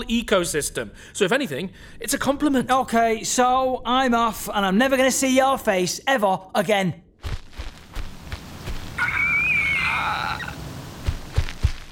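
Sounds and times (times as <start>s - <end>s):
speech: 0.0s - 7.4s
soft outdoor patter: 7.2s - 11.8s
large eagle giving a drawn-out warbling call outside: 8.9s - 10.7s.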